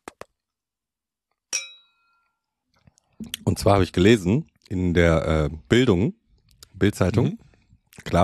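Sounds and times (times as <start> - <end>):
glasses clinking in a toast: 1.5 - 2.3
speech: 3.2 - 6.2, 6.8 - 8.2.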